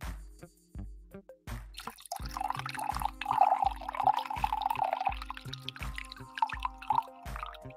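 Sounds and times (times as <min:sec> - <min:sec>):
coffee pouring into a cup: 0:01.8 - 0:07.7.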